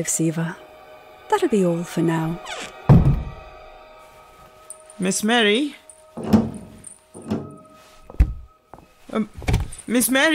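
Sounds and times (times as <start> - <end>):
speech: 0.0 - 0.6, 1.3 - 2.8, 5.0 - 6.4, 9.2 - 10.3
door shutting with a solid thud: 2.9 - 3.4, 6.2 - 7.6
door lock clicking: 6.2 - 7.6
door scraping: 6.2 - 8.5.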